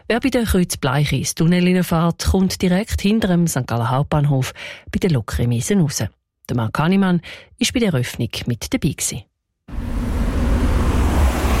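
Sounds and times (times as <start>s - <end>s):
speech: 0.1s - 9.8s
traffic roaring at a busy road intersection: 9.7s - 11.5s.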